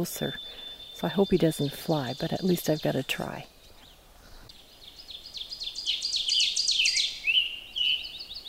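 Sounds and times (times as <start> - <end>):
speech: 0.0 - 3.5
bird singing a rough burry song: 0.0 - 8.4.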